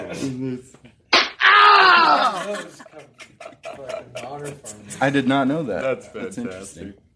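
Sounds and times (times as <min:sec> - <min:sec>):
speech: 0:00.0 - 0:01.0, 0:01.9 - 0:03.1, 0:03.8 - 0:07.0
slap sound effect from soundboard button: 0:01.1 - 0:01.4
laughter: 0:01.8 - 0:06.5.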